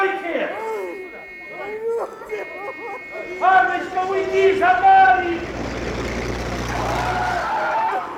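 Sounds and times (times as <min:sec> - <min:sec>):
laughter: 0:00.0 - 0:08.1
military car brakes and tyres squealing braking hard to a stop: 0:00.0 - 0:08.1
military car engine rumble: 0:00.0 - 0:08.1.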